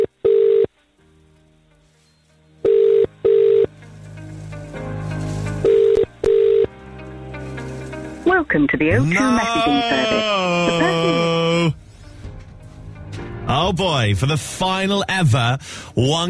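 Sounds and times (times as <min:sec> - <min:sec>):
telephone double-burst ringback tone on a radio competition call: 0:00.0 - 0:00.7, 0:02.6 - 0:03.7, 0:05.6 - 0:06.8
speech: 0:08.5 - 0:11.8, 0:13.7 - 0:16.2
laughter: 0:09.2 - 0:11.8.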